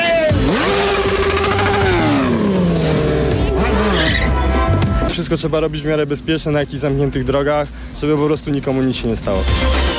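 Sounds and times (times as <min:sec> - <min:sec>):
stunt motorcycle engine revving hard: 0:00.2 - 0:05.1
speech: 0:05.2 - 0:09.8.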